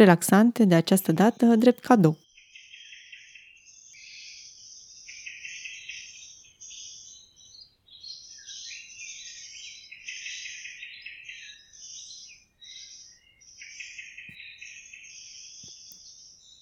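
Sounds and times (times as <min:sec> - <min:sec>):
birds chirping in a forest near Bucharest: 0:00.0 - 0:02.2
speech: 0:00.0 - 0:02.2.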